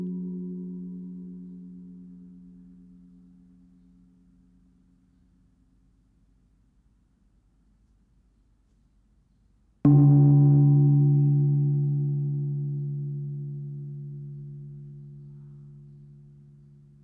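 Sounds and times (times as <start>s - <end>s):
gongs: 9.9s - 17.0s.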